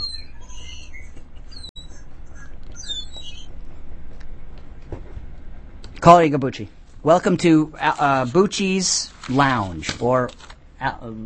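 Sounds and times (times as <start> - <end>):
several birds chirping and twittering: 0.0 - 3.6
speech: 6.0 - 11.2.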